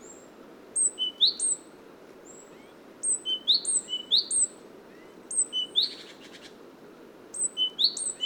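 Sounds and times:
great tit Parus major calls with high down-slurred notes: 0:00.0 - 0:01.7, 0:02.3 - 0:06.5, 0:07.3 - 0:08.2.

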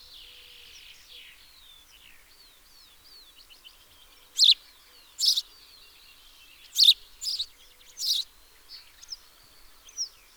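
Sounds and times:
house sparrow Passer domesticus chirps: 0:03.2 - 0:10.2
soft bird twitters: 0:04.4 - 0:04.6, 0:05.2 - 0:05.4, 0:06.7 - 0:08.3.

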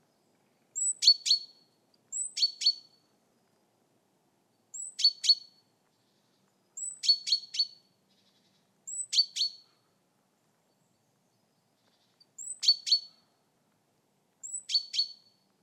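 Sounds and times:
great tit Parus major calls: 0:00.8 - 0:02.9, 0:04.8 - 0:09.7, 0:11.8 - 0:13.3, 0:14.4 - 0:15.4.

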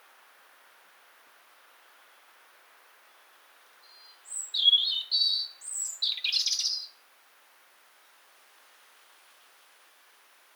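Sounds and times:
European robin Erithacus rubecula singing: 0:03.9 - 0:07.0.

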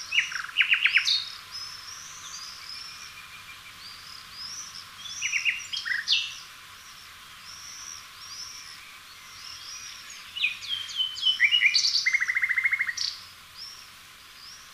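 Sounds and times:
common nightingale singing, Luscinia megarhynchos: 0:00.0 - 0:14.7
faint bird whistles: 0:00.1 - 0:06.4, 0:09.2 - 0:13.8.

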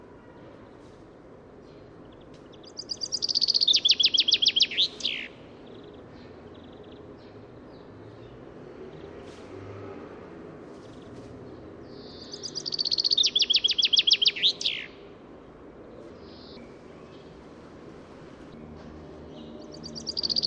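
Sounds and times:
Common chaffinch Fringilla coelebs singing: 0:01.7 - 0:08.4, 0:11.0 - 0:15.2, 0:15.9 - 0:17.3, 0:19.3 - 0:20.4.

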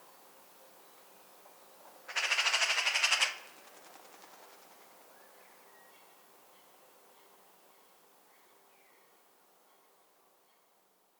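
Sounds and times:
Eurasian magpie Pica pica chattering: 0:02.1 - 0:03.5.

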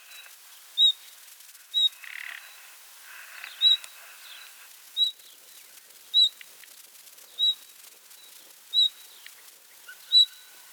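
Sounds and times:
background hiss: 0:00.0 - 0:10.7
common nightingale Luscinia megarhynchos whistled calls: 0:07.4 - 0:07.6, 0:08.7 - 0:09.1, 0:09.9 - 0:10.5.

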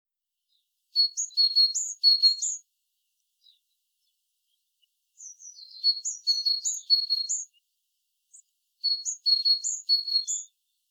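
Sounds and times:
great tit calling: 0:01.0 - 0:02.6, 0:05.2 - 0:07.6, 0:08.3 - 0:10.5.

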